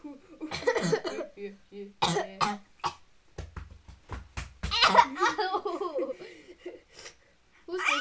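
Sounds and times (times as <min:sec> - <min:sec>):
several sharp coughs: 0:00.5 - 0:01.3, 0:02.0 - 0:03.0, 0:04.7 - 0:05.4
laughter: 0:05.0 - 0:06.9.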